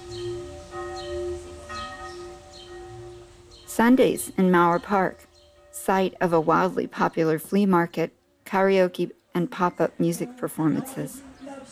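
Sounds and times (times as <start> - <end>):
church bells ringing in the Neukölln district of Berlin: 0.0 - 7.9
speech: 3.8 - 5.3, 5.9 - 11.7.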